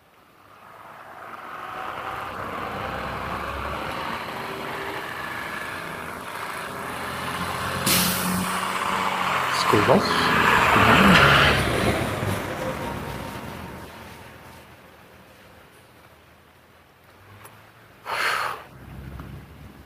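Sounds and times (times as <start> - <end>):
school bus driving past: 0.0 - 15.9, 18.7 - 19.8
short hissing burst: 7.8 - 8.5, 18.0 - 18.7
speech: 9.7 - 11.3.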